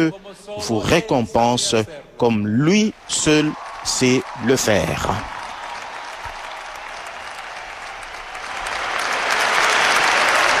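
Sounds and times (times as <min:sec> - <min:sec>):
speech: 0:00.0 - 0:05.4
loud sustained applause from a large crowd: 0:03.0 - 0:10.5.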